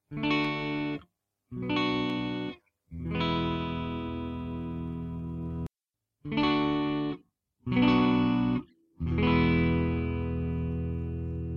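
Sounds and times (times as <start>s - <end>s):
chords played clean on the neck: 0.1s - 5.7s, 6.3s - 11.5s.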